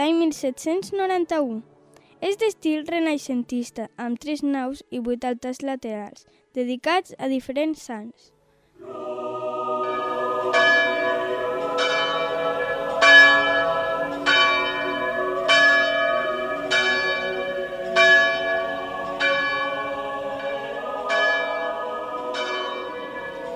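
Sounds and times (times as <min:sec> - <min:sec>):
speech: 0:00.0 - 0:09.4
church bells pealing from the bell tower of a church built in 1791: 0:09.8 - 0:23.5.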